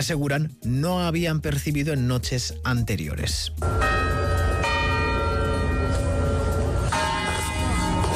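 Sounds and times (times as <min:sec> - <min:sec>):
speech: 0:00.0 - 0:04.1
clock bells of the Real Casa de Correos in Madrid chiming: 0:03.6 - 0:08.1.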